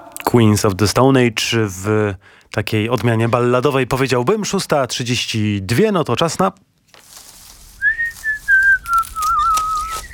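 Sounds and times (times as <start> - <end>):
speech: 0.4 - 6.7
person whistling a tune: 7.8 - 10.1.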